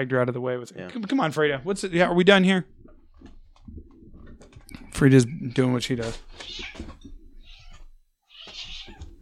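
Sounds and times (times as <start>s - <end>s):
speech: 0.0s - 2.8s, 4.9s - 7.0s
female cat yowling angrily: 7.4s - 9.2s.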